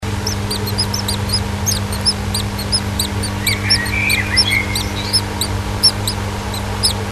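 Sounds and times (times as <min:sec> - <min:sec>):
chicks in a nest box: 0:00.0 - 0:07.1.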